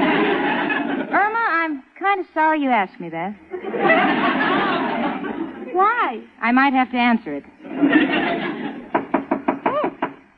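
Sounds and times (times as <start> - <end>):
laughter: 0.0 - 1.2, 3.5 - 5.8, 7.7 - 9.1
speech: 2.2 - 4.8, 5.8 - 8.5
knocking on a door: 8.9 - 10.2.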